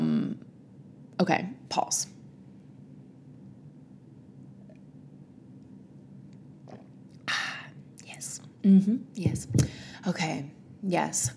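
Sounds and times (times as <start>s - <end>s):
speech: 1.2s - 2.2s, 8.6s - 11.3s
slurping sip of a hot drink: 6.6s - 7.3s
faint mouth sounds: 6.6s - 8.6s.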